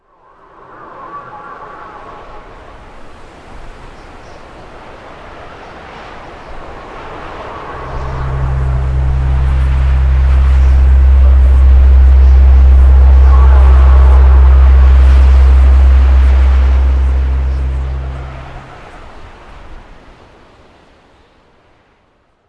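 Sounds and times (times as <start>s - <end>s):
music buildup: 6.7s - 19.2s.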